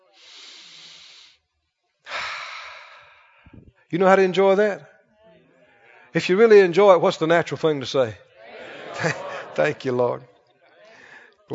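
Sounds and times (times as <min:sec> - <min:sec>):
deep breath drawn and let out in airy hisses: 0:00.0 - 0:03.9, 0:10.8 - 0:11.4
speech: 0:03.9 - 0:04.9, 0:06.1 - 0:08.2, 0:08.9 - 0:10.3
laughter: 0:08.4 - 0:10.4.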